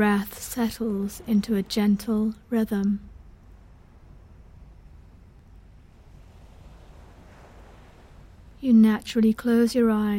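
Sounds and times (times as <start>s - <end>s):
speech: 0.0s - 3.1s, 8.6s - 10.1s
gentle sea waves washing on shore: 0.0s - 9.9s
faint breeze: 0.0s - 10.1s.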